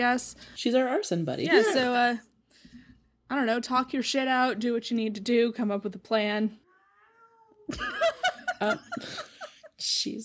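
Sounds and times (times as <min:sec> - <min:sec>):
speech: 0:00.0 - 0:02.3, 0:03.3 - 0:06.6, 0:07.7 - 0:10.2
cat yowling with wavering meows and chirps: 0:06.6 - 0:07.7
laughter: 0:07.7 - 0:09.7.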